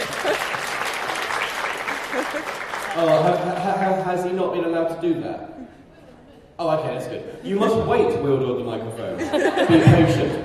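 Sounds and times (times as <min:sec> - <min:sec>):
laughter: 0:00.0 - 0:00.8, 0:01.8 - 0:03.9, 0:05.6 - 0:08.1, 0:09.0 - 0:10.4
crowd applauding: 0:00.0 - 0:04.2
speech: 0:02.3 - 0:05.8, 0:06.6 - 0:10.4.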